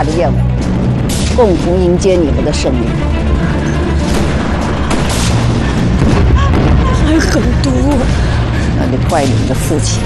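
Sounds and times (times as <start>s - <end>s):
speech: 0.0s - 0.7s, 1.4s - 3.2s, 7.1s - 10.0s
deep rumbling booms: 0.6s - 10.0s
crackling debris: 3.4s - 9.6s
airplane blowing apart in mid-air with explosive roar: 4.0s - 8.5s.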